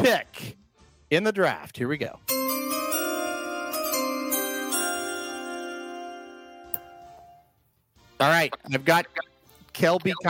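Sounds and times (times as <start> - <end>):
speech: 0.0 - 2.5, 8.2 - 10.2
bright electronic draft chime melody: 2.3 - 7.4.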